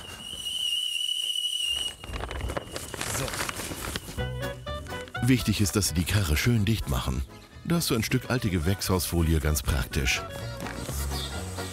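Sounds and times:
tea kettle whistling: 0.0s - 5.0s
speech: 5.3s - 10.8s.

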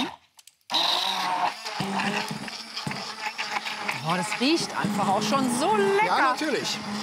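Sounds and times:
electric blender blending strawberries with lemon juice: 0.0s - 7.0s
speech: 4.0s - 7.0s.

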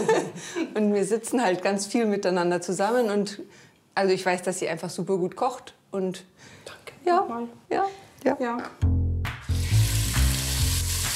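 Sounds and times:
speech: 0.0s - 9.0s
finely diced lamb hearts searing in clarified butter: 9.5s - 11.1s.

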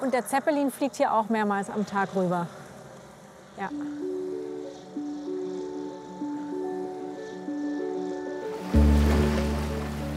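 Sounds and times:
speech: 0.0s - 2.6s, 3.6s - 4.2s
boat droning while crossing the lake to Lindau: 0.0s - 10.1s
rushing water and wave wash on a lake: 0.0s - 10.1s.

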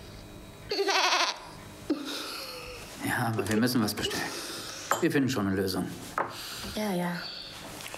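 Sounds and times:
goat bleating: 0.7s - 1.5s
speech: 3.2s - 7.3s.

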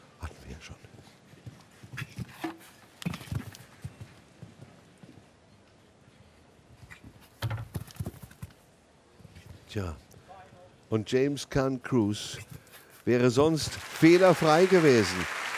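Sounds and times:
faint outdoor background: 0.0s - 14.2s
grey horse hooves clattering on firm ground on a show jumping course: 1.3s - 5.3s, 7.2s - 8.6s
speech: 9.7s - 10.0s, 10.9s - 15.4s.

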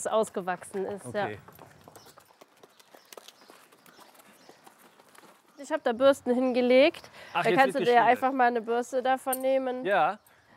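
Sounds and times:
speech: 0.0s - 1.6s, 5.6s - 10.2s
horse hooves clip-clopping on a hard surface at walking pace while being led: 0.0s - 6.6s.

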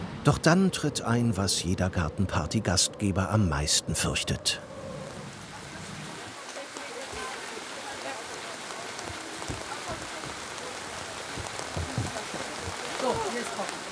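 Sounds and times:
steady rain falling on a garden: 0.0s - 13.8s
speech: 0.2s - 4.8s
individual raindrops pattering: 5.0s - 13.8s.

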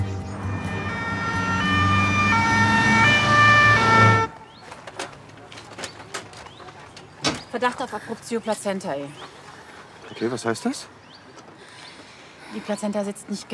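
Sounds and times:
ambulance siren wailing in alternating tones: 0.0s - 4.4s
speech: 7.6s - 9.4s, 10.1s - 11.0s, 12.5s - 13.5s.

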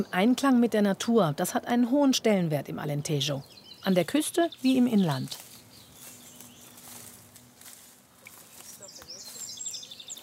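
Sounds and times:
speech: 0.0s - 5.4s
faint birdsong: 0.0s - 10.2s
bright bird chirps and trills: 2.7s - 7.3s, 8.2s - 10.2s.

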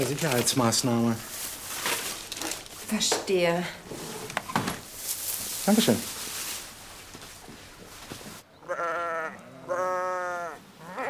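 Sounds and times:
speech: 0.0s - 1.5s, 2.9s - 4.0s, 5.6s - 6.2s
broadband rustling noise: 0.0s - 8.4s
sheep bleating: 8.6s - 11.0s.

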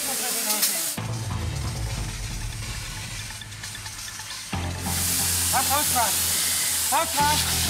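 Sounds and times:
fire hose spraying water onto burning rubbish at a fire: 0.0s - 7.6s
speech: 5.7s - 6.3s, 6.9s - 7.6s.

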